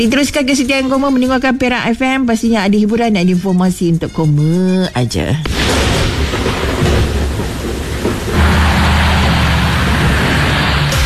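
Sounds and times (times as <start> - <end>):
speech: 0.0 - 6.0
heavy rain during a thunderstorm in Perak state: 5.5 - 11.0
low thunder rumbling during a thunderstorm in Perak state: 5.5 - 11.0.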